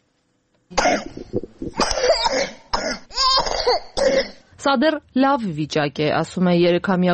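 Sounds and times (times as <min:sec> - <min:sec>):
speech: 0:00.7 - 0:02.5, 0:04.6 - 0:07.1
three-year-old child with an acute respiratory infection coughing: 0:00.8 - 0:04.4.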